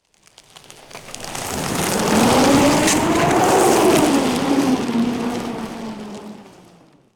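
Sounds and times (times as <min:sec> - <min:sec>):
footsteps stepping and crushing snow: 0:00.2 - 0:04.7.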